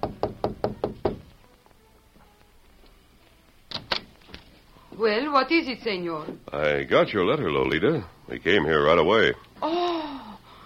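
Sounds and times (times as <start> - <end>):
knocking on a wooden hotel room door: 0.0 - 1.3
speech: 5.0 - 9.8.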